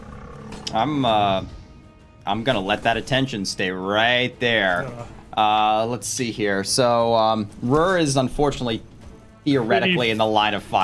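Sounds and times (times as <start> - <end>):
dinosaur roaring in pain: 0.0 - 1.6
speech: 0.7 - 1.6, 2.2 - 10.8.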